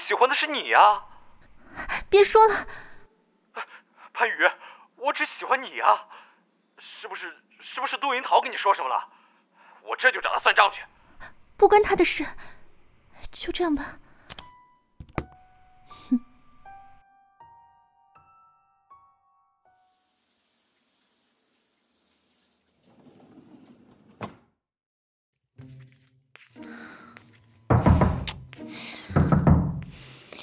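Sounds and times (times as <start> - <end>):
speech: 0.1 - 1.1, 1.7 - 2.9, 3.6 - 6.2, 6.8 - 9.1, 9.8 - 12.6, 13.2 - 14.0
banging on a door: 27.7 - 30.1.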